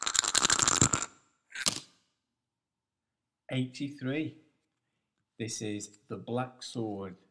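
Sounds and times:
dice being rolled, rattling and clattering: 0.0 - 1.9
speech: 3.5 - 4.4, 5.4 - 7.2.

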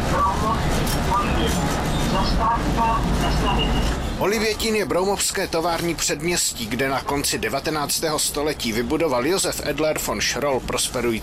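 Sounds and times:
train running on rails past Teplice nad Metují: 0.0 - 6.6
speech: 1.2 - 11.2.

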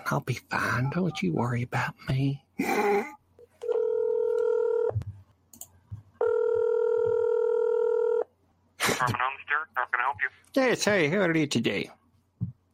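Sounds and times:
speech: 0.1 - 3.2, 9.0 - 12.0
electronic ringback tones through a phone line: 3.6 - 5.0, 6.2 - 8.2.

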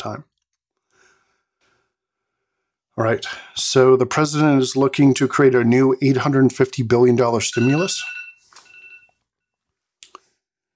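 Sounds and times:
speech: 0.0 - 0.3, 3.0 - 8.2
alarm beeping: 7.4 - 9.1.

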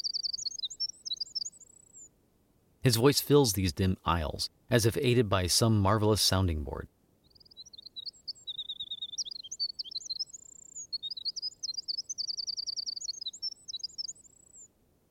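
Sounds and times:
small songbird singing: 0.0 - 2.1, 7.2 - 14.7
speech: 2.9 - 6.9.

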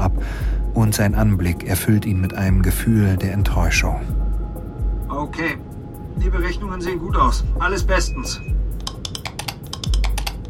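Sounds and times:
speech: 0.8 - 4.2, 5.2 - 8.6
key presses on a lunar module guidance system keyboard: 8.8 - 10.4.

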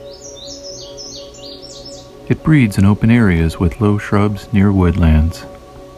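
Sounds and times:
indigo bunting singing high sweet chirps and slurred notes: 0.0 - 5.0
steady hum: 0.0 - 5.9
speech: 2.3 - 5.5.

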